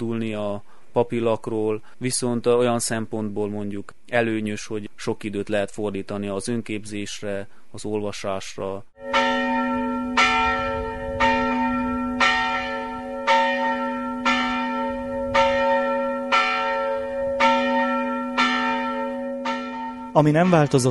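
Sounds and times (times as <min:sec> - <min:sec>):
speech: 0:00.0 - 0:09.6, 0:20.2 - 0:20.8
single church bell tolling: 0:09.0 - 0:20.8.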